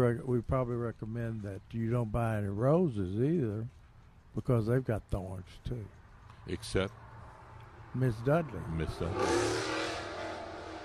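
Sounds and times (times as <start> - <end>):
speech: 0.0 - 3.8, 4.4 - 7.0, 7.9 - 9.7
motorcycle engine revving as it passes: 7.4 - 10.8.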